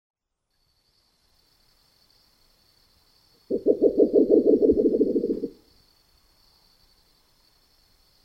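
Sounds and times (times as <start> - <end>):
thin constant high hiss: 0.4 - 8.2
Spectacled owl hooting in the Neotropics: 3.5 - 5.6.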